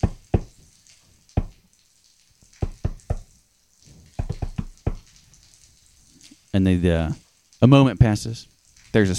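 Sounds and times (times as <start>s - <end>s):
steady faint hiss: 0.0s - 9.1s
sharp knocks on a door in the sewers: 2.6s - 3.3s, 4.2s - 5.0s
speech: 6.5s - 9.1s.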